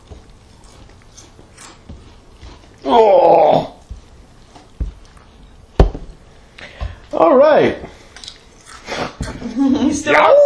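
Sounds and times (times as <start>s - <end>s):
voice imitating the howl of a statue: 2.8s - 3.8s, 10.1s - 10.4s
speech: 2.9s - 3.5s, 7.2s - 8.0s, 10.0s - 10.3s.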